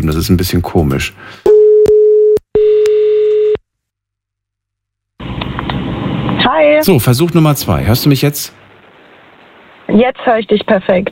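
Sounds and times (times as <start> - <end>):
speech: 0.0 - 1.5, 6.8 - 8.6, 9.9 - 11.1
low telephone line beeps during a call back: 1.5 - 3.6.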